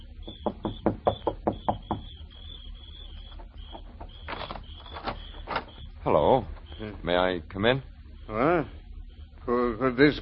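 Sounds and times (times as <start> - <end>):
knocking on a wooden door: 0.2 - 2.2
speech: 7.1 - 8.8, 9.8 - 10.2.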